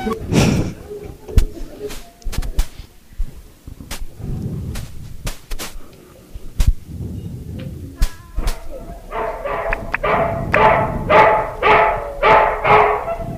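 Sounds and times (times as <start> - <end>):
rustling noise: 0.1 - 13.3
dog barking: 8.5 - 13.3.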